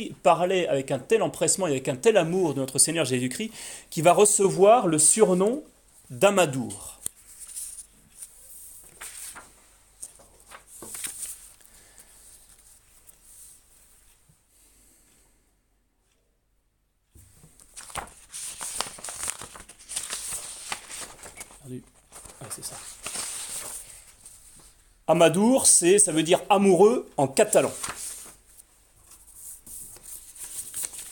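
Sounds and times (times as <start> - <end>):
speech: 0.0 - 7.0, 25.2 - 28.0
paper sheets shuffled and flipped: 6.8 - 14.2, 17.2 - 31.1.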